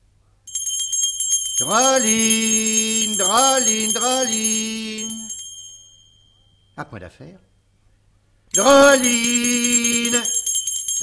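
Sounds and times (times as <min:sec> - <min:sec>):
small hand bell rung rapidly by a character in a stage comedy: 0:00.5 - 0:06.8, 0:08.5 - 0:11.0
speech: 0:01.6 - 0:05.3, 0:06.8 - 0:07.5, 0:08.5 - 0:10.4.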